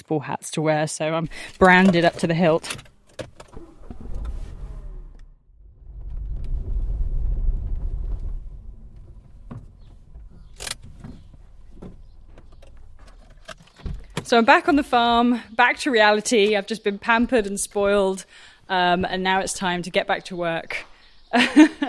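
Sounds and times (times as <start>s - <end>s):
speech: 0.1s - 3.3s, 14.3s - 21.8s
clicks and clunks from the vehicle: 1.3s - 5.3s, 8.8s - 14.6s
car engine starting up and idling: 1.3s - 14.2s.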